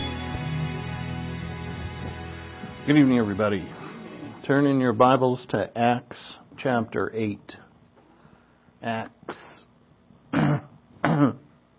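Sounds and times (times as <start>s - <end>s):
speech: 2.9s - 3.8s, 4.4s - 7.6s, 8.8s - 9.5s, 11.2s - 11.4s
person clearing throat at an evening Bible reading: 10.3s - 11.5s.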